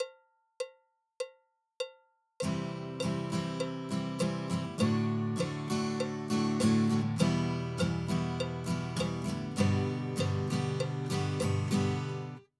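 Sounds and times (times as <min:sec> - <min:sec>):
guitar chord stroke: 0:02.4 - 0:12.5.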